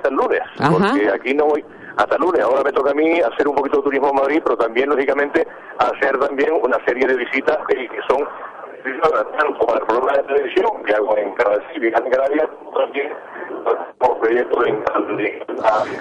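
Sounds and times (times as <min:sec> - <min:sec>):
speech: 0:00.1 - 0:15.9
voice over breaking-up mobile phone line: 0:00.6 - 0:01.2.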